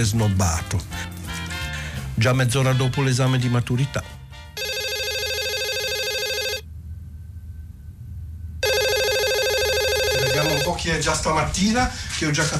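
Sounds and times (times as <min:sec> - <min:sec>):
speech: 0:00.0 - 0:01.1, 0:02.2 - 0:04.2, 0:10.7 - 0:12.5
low steady hum: 0:04.0 - 0:12.5
electronic telephone ringing: 0:04.6 - 0:06.7, 0:08.6 - 0:10.8.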